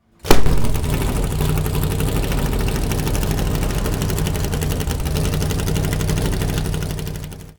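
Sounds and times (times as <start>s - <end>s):
1969 Lola T163 race car engine starting: 0.0s - 7.5s.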